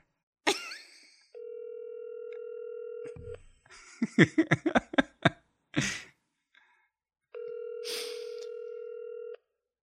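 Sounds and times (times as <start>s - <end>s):
telephone call ringing through a handset: 1.4s - 3.3s, 7.4s - 9.5s
laughter: 3.7s - 6.1s.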